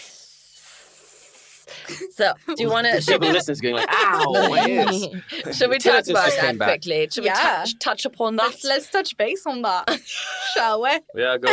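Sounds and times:
voice imitating a hissing snake: 0:00.0 - 0:01.7
laughter: 0:01.9 - 0:06.7, 0:09.9 - 0:10.8
speech: 0:01.9 - 0:11.5.

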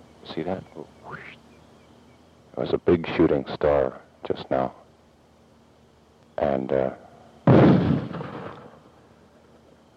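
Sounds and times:
speech: 0:00.4 - 0:01.4, 0:02.6 - 0:04.8, 0:06.4 - 0:07.0
mortar firing: 0:07.4 - 0:08.8.

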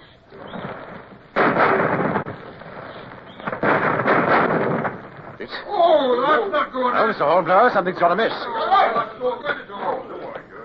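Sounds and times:
ship's cannon fired with a linstock: 0:00.3 - 0:05.6
speech: 0:05.4 - 0:09.6.

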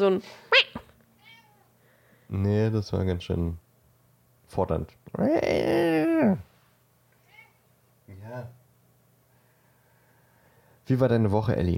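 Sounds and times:
speech: 0:00.0 - 0:00.8, 0:02.3 - 0:03.6, 0:04.5 - 0:06.5, 0:08.3 - 0:08.6, 0:10.9 - 0:11.7
cat meowing: 0:00.6 - 0:01.7.

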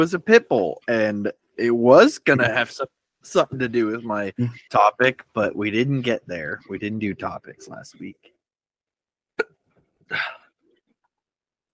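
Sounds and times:
speech: 0:00.0 - 0:08.3, 0:10.1 - 0:10.4
hiccups: 0:09.4 - 0:10.4.

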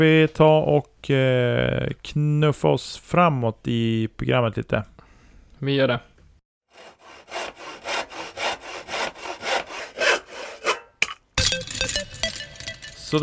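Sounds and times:
speech: 0:00.0 - 0:04.9, 0:05.6 - 0:06.1
hand saw cutting wood: 0:06.7 - 0:10.9.

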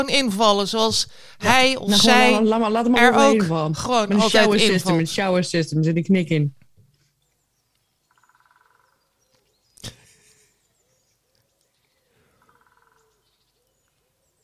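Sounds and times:
speech: 0:00.0 - 0:06.6
woodpecker calling: 0:06.9 - 0:09.8, 0:10.6 - 0:14.4.

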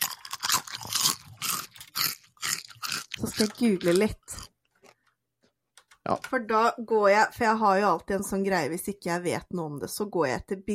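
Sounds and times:
chewing crunchy potato chips into microphone: 0:00.0 - 0:05.0
speech: 0:03.2 - 0:04.3, 0:06.1 - 0:10.7.

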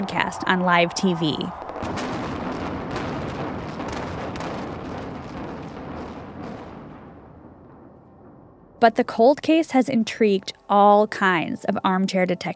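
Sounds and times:
speech: 0:00.0 - 0:02.1, 0:08.8 - 0:12.5
fireworks crackling: 0:00.0 - 0:08.4
building demolition explosions: 0:00.0 - 0:09.5.

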